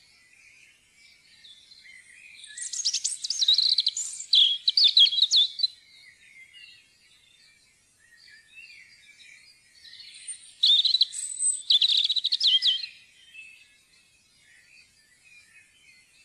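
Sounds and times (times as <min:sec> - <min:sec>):
European robin song in Norway: 0:02.5 - 0:05.7, 0:10.0 - 0:13.0.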